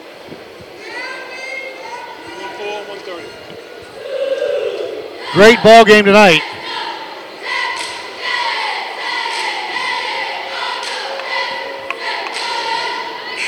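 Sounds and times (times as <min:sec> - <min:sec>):
packed crowd roaring at a basketball game: 0:04.0 - 0:13.4
speech: 0:05.3 - 0:06.5.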